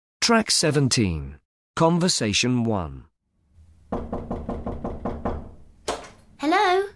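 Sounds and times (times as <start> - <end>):
speech: 0.2 - 3.1
knocking on a door: 3.9 - 6.2.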